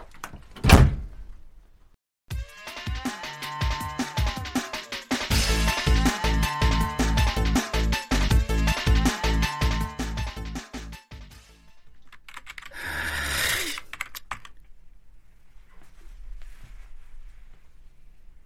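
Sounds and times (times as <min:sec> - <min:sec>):
door shutting with a thud: 0:00.6 - 0:01.2
music playing: 0:02.3 - 0:11.8
rapid typing on a laptop keyboard: 0:12.1 - 0:12.9, 0:13.7 - 0:14.6.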